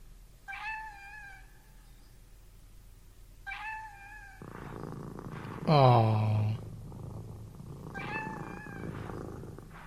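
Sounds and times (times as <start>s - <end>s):
cat meowing: 0.5s - 1.5s, 3.5s - 4.4s, 7.9s - 8.9s
speech: 5.7s - 6.3s.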